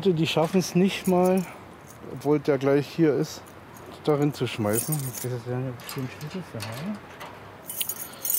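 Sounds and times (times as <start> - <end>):
speech: 0.0 - 7.2
metallic jangle of keys: 1.0 - 2.0, 3.4 - 7.0, 7.6 - 8.3.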